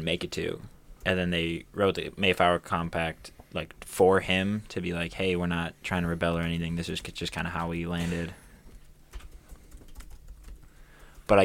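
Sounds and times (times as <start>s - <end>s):
speech: 0.0s - 8.4s, 11.3s - 11.4s
people typing on computer keyboards: 9.1s - 11.4s.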